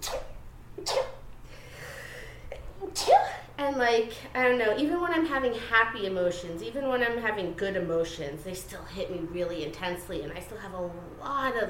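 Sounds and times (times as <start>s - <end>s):
person sneezing: 0.0s - 1.2s, 2.9s - 3.5s
soft breathing: 1.4s - 2.6s
speech: 3.6s - 11.6s.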